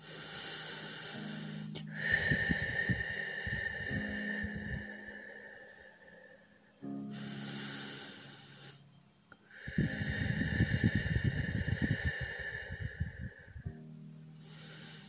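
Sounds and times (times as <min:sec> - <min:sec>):
person breathing deeply in through the nose and out through the mouth: 0:00.0 - 0:15.0
quiet sustained musical tone: 0:01.1 - 0:12.3.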